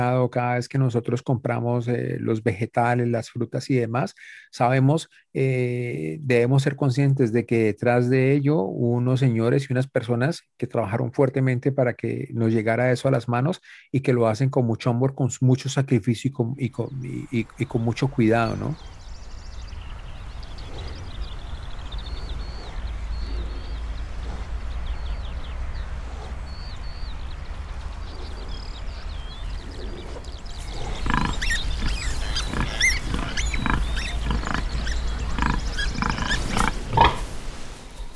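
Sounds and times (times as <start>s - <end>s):
speech: 0.0s - 19.0s
birds chirping in a barnyard: 16.6s - 38.1s
farm animal calls and snuffling in a barnyard: 20.0s - 38.1s.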